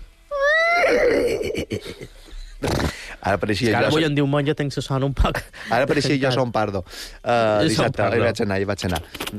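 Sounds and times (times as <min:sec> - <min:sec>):
person imitating a horse's whinny: 0:00.3 - 0:01.6
speech: 0:01.6 - 0:09.3.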